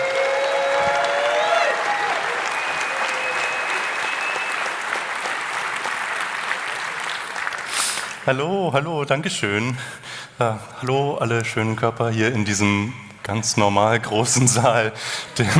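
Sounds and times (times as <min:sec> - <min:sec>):
loud sustained applause from a large audience in a hall: 0:00.0 - 0:08.3
audience whistles: 0:02.4 - 0:05.0
speech: 0:08.3 - 0:15.5.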